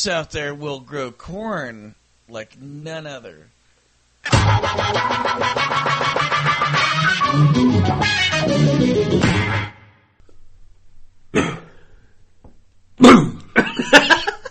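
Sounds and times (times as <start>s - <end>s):
speech: 0.0s - 3.6s, 4.2s - 9.8s
person coughing: 11.3s - 11.9s, 13.0s - 14.4s.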